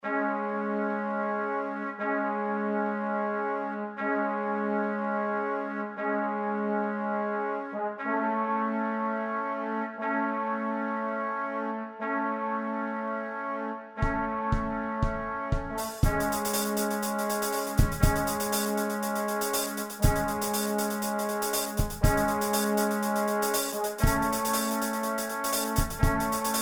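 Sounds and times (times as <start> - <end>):
trombone: 0.0 - 26.6
trumpet: 0.0 - 26.6
drum kit: 14.0 - 26.6.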